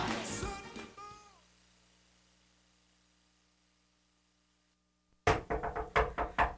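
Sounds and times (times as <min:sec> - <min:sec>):
loud sharp knocks on a door: 0:05.2 - 0:06.5.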